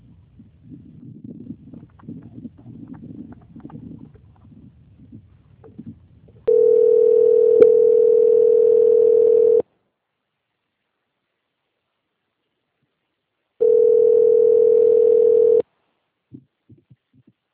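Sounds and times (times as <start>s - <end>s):
telephone line tone during a call to a bank on hold for transfer: 6.5s - 9.6s, 13.6s - 15.6s.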